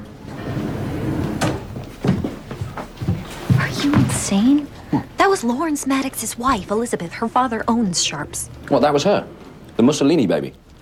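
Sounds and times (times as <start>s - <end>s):
lift doors opening: 0.1s - 1.8s
speech: 3.8s - 10.6s.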